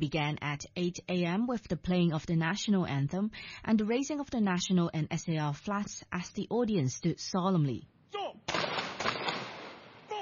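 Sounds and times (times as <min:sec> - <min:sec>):
speech: 0:00.0 - 0:08.8
gunfire from a ceremonial salute by a police guard unit: 0:08.5 - 0:10.2.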